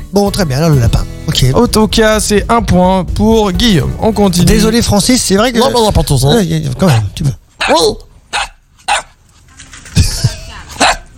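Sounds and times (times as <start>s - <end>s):
speech: 0.1s - 8.4s
puppies barking: 6.8s - 9.2s, 10.8s - 11.1s.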